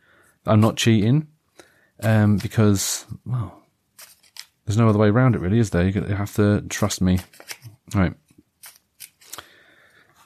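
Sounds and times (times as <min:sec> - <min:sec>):
speech: 0:00.4 - 0:01.3, 0:02.0 - 0:03.6, 0:04.7 - 0:08.2
deck of cards being cut: 0:04.0 - 0:04.6, 0:07.1 - 0:07.8, 0:08.6 - 0:09.5
playing cards snapping: 0:07.1 - 0:07.7, 0:08.6 - 0:09.5.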